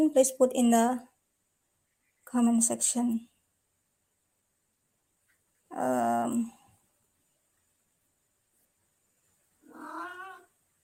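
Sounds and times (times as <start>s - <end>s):
speech: 0.0s - 1.1s, 2.3s - 3.3s, 5.7s - 6.6s
cat meowing: 9.6s - 10.6s.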